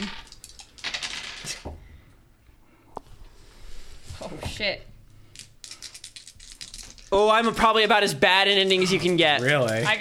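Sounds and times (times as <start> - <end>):
dice rolled across a tabletop during a game: 0.0 - 1.8, 5.3 - 7.6
speech: 4.6 - 4.9, 7.1 - 10.0.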